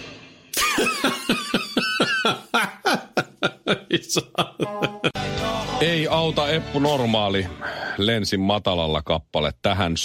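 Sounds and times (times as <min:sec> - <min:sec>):
person in a prolonged coughing fit: 0:00.6 - 0:02.8
laughter: 0:00.6 - 0:05.2
speech: 0:04.1 - 0:05.2, 0:05.8 - 0:10.0.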